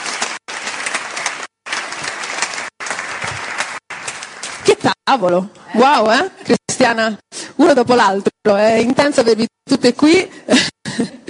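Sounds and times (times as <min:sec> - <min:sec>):
crowd applauding welcoming a speaker: 0:00.0 - 0:04.9
speech: 0:04.8 - 0:11.2.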